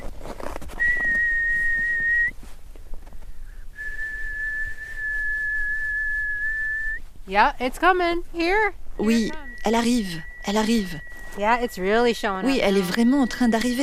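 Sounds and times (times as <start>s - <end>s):
faint noise: 0.0s - 13.8s
person whistling a long steady single note: 0.8s - 2.4s, 3.8s - 7.0s, 9.0s - 13.8s
speech: 7.3s - 13.8s.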